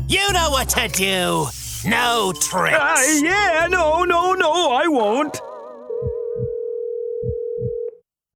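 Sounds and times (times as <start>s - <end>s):
speech: 0.1s - 5.5s
electronic phone ringing tone over a speakerphone on a table: 2.3s - 8.0s.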